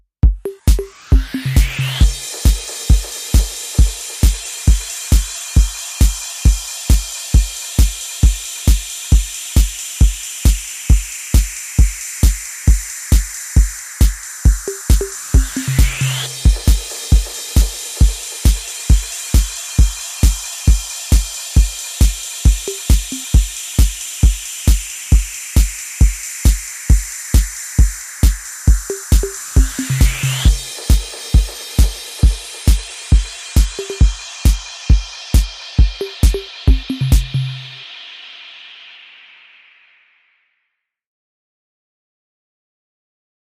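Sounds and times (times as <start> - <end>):
serious alert beat: 0.3 - 37.9.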